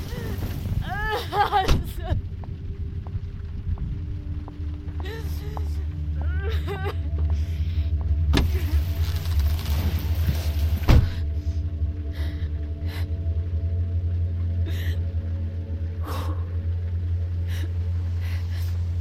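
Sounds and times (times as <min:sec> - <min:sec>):
car engine idling: 0:00.0 - 0:18.9
car door slamming: 0:10.8 - 0:11.1.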